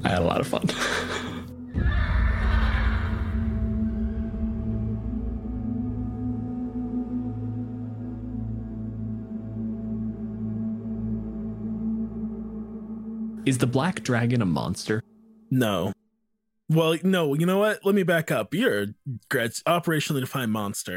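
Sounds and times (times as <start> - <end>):
speech: 0.1 - 1.3, 13.5 - 16.0, 16.7 - 20.9
low rumbling drone: 1.5 - 13.5
horse whinnying loudly: 1.7 - 3.5.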